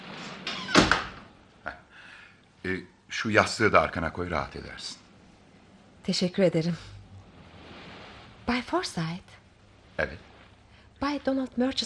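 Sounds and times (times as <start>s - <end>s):
door swinging shut with a firm thud and rattle: 0.0s - 1.3s
faint room noise: 0.0s - 11.8s
speech: 2.6s - 5.0s, 6.1s - 6.9s, 8.5s - 9.4s, 10.0s - 10.3s, 11.0s - 11.8s.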